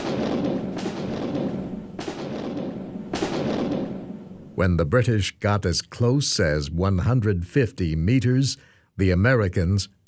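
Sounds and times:
American artillery shelling an attacking British force: 0:00.0 - 0:04.6
speech: 0:04.6 - 0:10.0.

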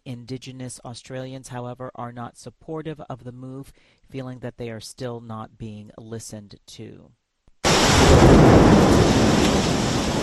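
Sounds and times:
speech: 0:00.1 - 0:07.2
heavy torrential rain in central Athens: 0:07.6 - 0:10.2
deep rumble of a thunderstorm: 0:07.7 - 0:10.2.

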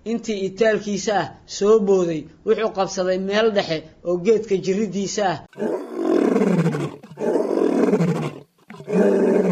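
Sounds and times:
speech: 0:00.0 - 0:07.0
lion roaring: 0:05.5 - 0:09.4.

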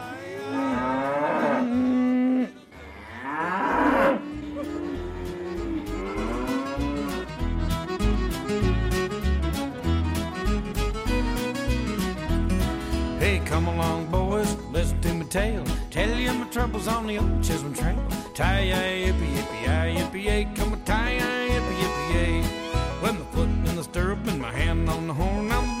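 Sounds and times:
calves mooing while being herded by a cowboy: 0:00.4 - 0:07.4
music with a steady beat: 0:05.6 - 0:25.7
speech: 0:16.7 - 0:21.2.

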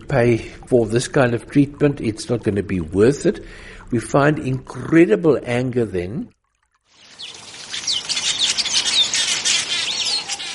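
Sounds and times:
speech: 0:00.1 - 0:06.4
birds chirping and trilling in a flower-filled hospice garden in Houghton, Johannesburg: 0:06.9 - 0:10.5.

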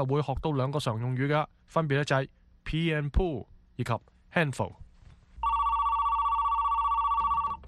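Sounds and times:
speech: 0:00.0 - 0:04.8
telephone ringing: 0:05.4 - 0:07.6.

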